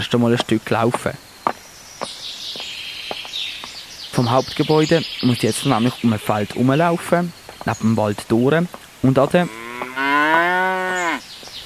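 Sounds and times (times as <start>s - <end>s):
speech: 0.0s - 1.3s, 4.2s - 9.6s
faint outdoor noise: 0.0s - 11.6s
cow mooing on a farm beside a field near a forest: 9.4s - 11.2s.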